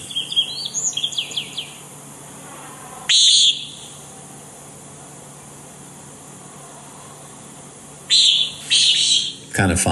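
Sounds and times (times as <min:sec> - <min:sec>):
common nighthawk nasal buzzy peent calls: 0:00.0 - 0:04.1, 0:08.0 - 0:09.5
twittering chirps: 0:00.0 - 0:04.1, 0:08.0 - 0:09.5
speech: 0:09.6 - 0:09.8.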